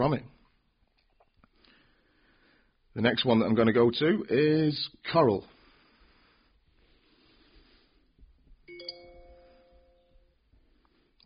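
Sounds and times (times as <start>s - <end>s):
speech: 0.0s - 0.4s, 3.0s - 5.6s
bright electronic phone notification chime: 8.7s - 10.3s.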